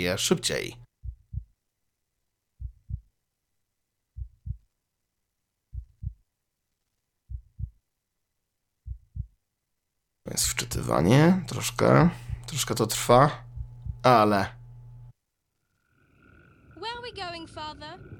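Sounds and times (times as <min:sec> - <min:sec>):
speech: 0:00.0 - 0:00.8, 0:10.3 - 0:13.4, 0:14.0 - 0:14.6
video game health indicator heartbeat thumping: 0:01.0 - 0:01.6, 0:02.6 - 0:03.1, 0:04.1 - 0:04.7, 0:05.7 - 0:06.2, 0:07.3 - 0:07.8, 0:08.8 - 0:09.4, 0:10.3 - 0:15.1.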